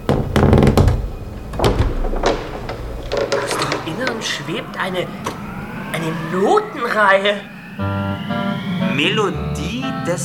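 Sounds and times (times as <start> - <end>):
coffin lid opening with heavy knocks and hollow thuds: 0.0 - 4.3
speech: 4.1 - 8.4, 9.0 - 10.2.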